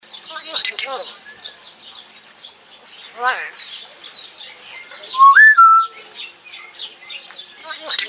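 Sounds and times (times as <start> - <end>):
speech: 0.9 - 1.2, 3.2 - 3.8
pet common hill myna loud whistled call: 5.1 - 6.0
soft common hill myna chattering notes: 5.2 - 6.0.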